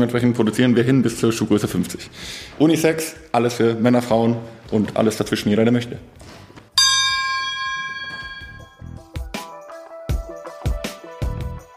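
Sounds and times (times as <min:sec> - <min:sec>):
speech: 0:00.0 - 0:06.4
hand bell rung to celebrate a deal: 0:06.8 - 0:09.0.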